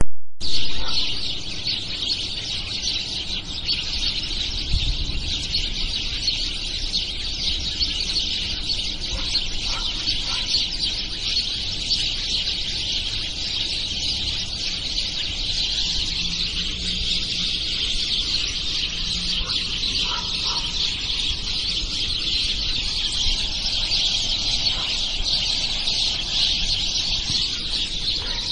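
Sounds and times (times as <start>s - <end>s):
sparrow: 0.4s - 28.5s.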